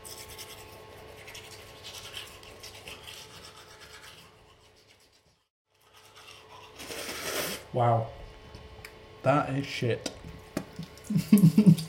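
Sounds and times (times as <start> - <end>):
cheap toothbrush with weak bristles scrubbing teeth: 0.0 - 7.7
speech: 7.8 - 8.2, 9.2 - 10.1, 11.1 - 11.8.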